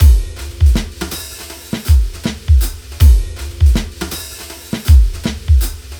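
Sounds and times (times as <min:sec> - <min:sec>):
brushed drums in chill pop rock at moderate tempo: 0:00.0 - 0:05.9.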